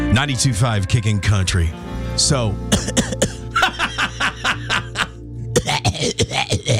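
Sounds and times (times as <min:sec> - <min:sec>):
speech: 0:00.1 - 0:03.1
person forced exaggerated coughing: 0:02.7 - 0:03.8, 0:04.7 - 0:06.7
laughter: 0:03.5 - 0:05.2.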